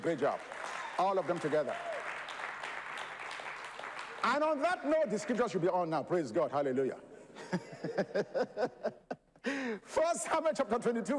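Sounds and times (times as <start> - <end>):
speech: 0.0 - 1.9, 4.2 - 9.0, 9.6 - 11.1
crowd clapping: 0.0 - 5.8
laughter: 7.2 - 9.4.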